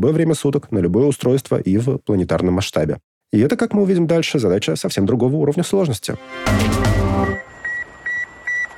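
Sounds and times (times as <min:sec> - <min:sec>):
speech: 0:00.0 - 0:07.5
ICQ instant messenger electronic notification chime: 0:06.5 - 0:08.7.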